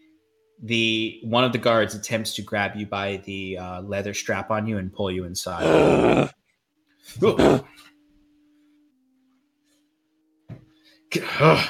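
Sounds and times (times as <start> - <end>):
faint low hum: 0.0 - 11.6
speech: 0.6 - 6.4, 7.0 - 7.9, 11.1 - 11.6
person imitating an aggressive dog growling and snarling: 5.6 - 6.4, 7.2 - 7.7.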